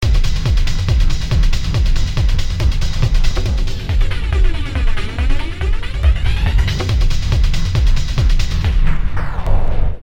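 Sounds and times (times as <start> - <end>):
minimal techno beats loop on a V-Synth: 0.0 - 9.6.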